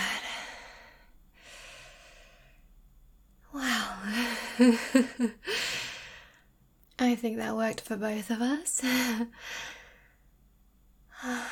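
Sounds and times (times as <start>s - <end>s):
person breathing heavily catching their breath: 0.0s - 2.7s, 3.6s - 6.4s, 8.8s - 10.3s, 11.1s - 11.5s
speech: 4.6s - 5.6s, 7.0s - 9.8s, 11.2s - 11.5s.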